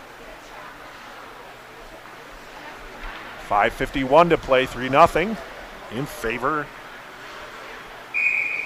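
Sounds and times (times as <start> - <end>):
low hum of crowd noise: 0.0 - 8.6
speech: 3.5 - 6.8
referee's whistle blast stopping play in a hockey game: 8.1 - 8.6.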